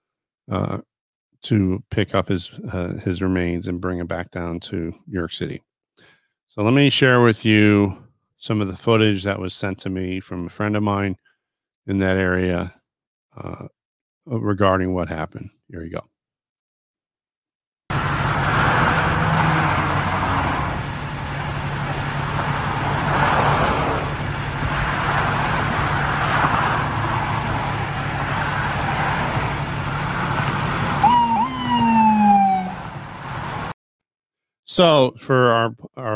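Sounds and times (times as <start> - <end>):
speech: 0.5 - 11.2, 11.8 - 12.8, 13.4 - 16.1, 34.8 - 36.1
steady road and traffic rumble in upstate New York: 17.9 - 33.8
FDNY ambulance siren with New York State Police escort passing on 87 South: 18.0 - 24.3, 25.0 - 33.7.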